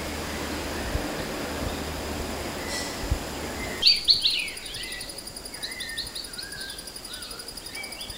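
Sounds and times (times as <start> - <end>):
high-pitched insect drone: 0.1 - 8.1
Temminck's babbler calling: 3.7 - 8.1.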